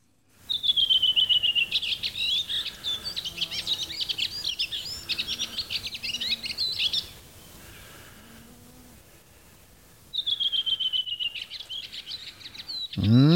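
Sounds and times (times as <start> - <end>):
redwing singing: 0.5 - 7.9, 10.1 - 13.3
faint low cow moo: 13.0 - 13.3.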